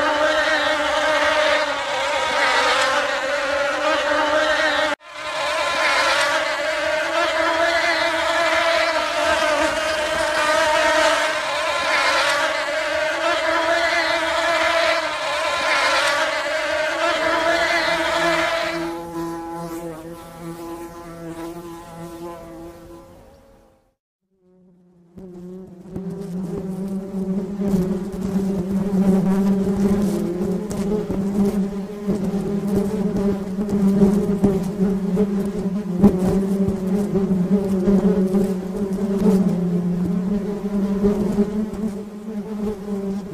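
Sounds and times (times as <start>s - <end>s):
bees humming: 0.0s - 23.8s, 24.4s - 43.3s.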